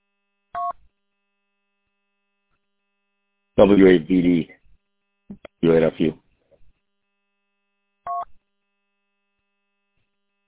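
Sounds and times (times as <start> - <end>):
speech: 3.6 - 4.6, 5.4 - 6.2
DTMF telephone keypad tone over a repeater-to-repeater phone link: 8.1 - 8.3.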